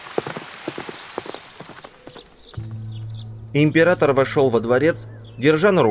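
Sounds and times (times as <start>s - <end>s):
hooves of a plump bay mare clip-clopping at a walk: 0.0s - 2.6s
speech: 3.6s - 5.8s.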